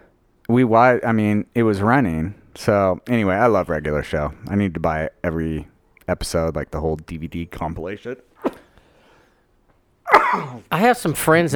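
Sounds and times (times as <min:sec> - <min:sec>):
speech: 0:00.5 - 0:08.5, 0:10.3 - 0:11.5
person sneezing: 0:08.4 - 0:08.7, 0:10.1 - 0:10.7.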